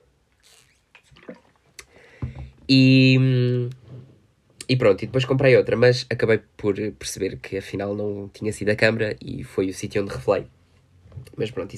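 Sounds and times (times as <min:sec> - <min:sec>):
gulp: 0:00.4 - 0:02.4
person sipping water: 0:00.4 - 0:02.5
speech: 0:02.7 - 0:03.8, 0:04.7 - 0:10.6, 0:11.2 - 0:11.7.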